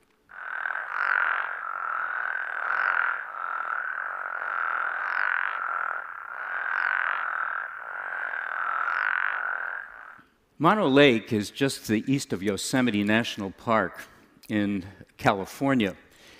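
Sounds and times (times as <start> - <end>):
frog chorus: 0.3 - 10.2
speech: 10.6 - 16.0.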